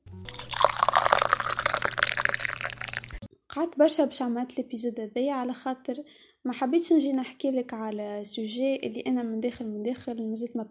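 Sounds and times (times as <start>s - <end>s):
water pouring from a bottle: 0.3s - 3.2s
speech: 3.6s - 10.6s.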